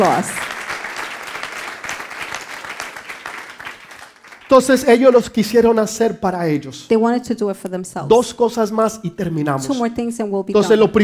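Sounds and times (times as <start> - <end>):
speech: 0.0 - 0.4, 4.5 - 11.0
large crowd applauding loudly: 0.0 - 5.3.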